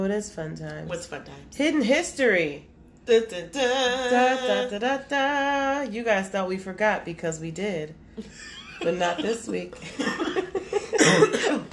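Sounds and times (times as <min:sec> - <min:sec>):
speech: 0:00.0 - 0:10.5, 0:11.1 - 0:11.7
laughter: 0:08.2 - 0:11.7
person coughing: 0:10.8 - 0:11.7.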